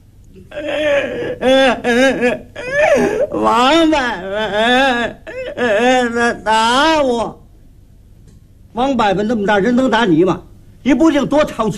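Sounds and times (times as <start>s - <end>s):
speech: 0.4s - 7.4s, 8.8s - 11.7s
child crying: 0.5s - 7.2s.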